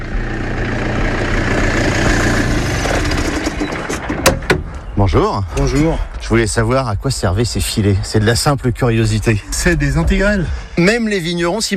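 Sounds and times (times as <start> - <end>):
tractor engine chugging outdoors in a vineyard plot: 0.0 - 5.0
speech: 5.2 - 11.7.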